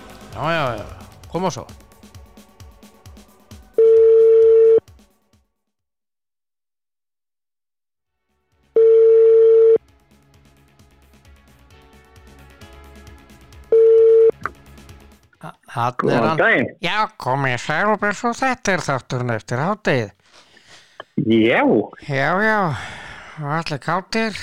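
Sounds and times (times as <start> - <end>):
speech: 0.4 - 1.8, 15.8 - 20.4, 21.2 - 24.4
telephone call ringing beeps of equal pitch: 3.8 - 4.8, 8.8 - 9.8, 13.7 - 14.4.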